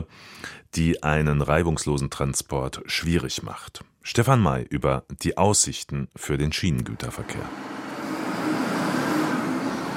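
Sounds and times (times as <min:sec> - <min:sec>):
speech: 0:00.0 - 0:07.8
crane motor droning while loading a container onto a railway wagon: 0:07.0 - 0:09.9.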